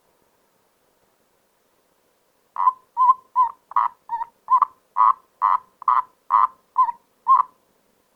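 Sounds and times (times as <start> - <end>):
common toad giving grating croaks: 2.6 - 7.6.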